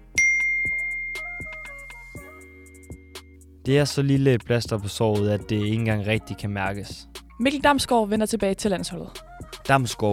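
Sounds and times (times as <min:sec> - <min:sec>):
push notification ding: 0:00.2 - 0:03.1
soft chiming notes: 0:00.2 - 0:03.3
speech: 0:03.7 - 0:10.1.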